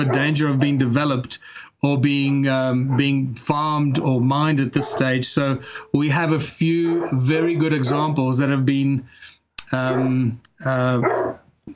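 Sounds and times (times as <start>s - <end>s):
dog barking outdoors on a rural farm property: 0.0s - 0.8s, 2.2s - 3.2s, 4.8s - 5.2s, 6.8s - 8.2s, 9.8s - 10.2s, 11.0s - 11.4s
speech: 0.0s - 11.3s.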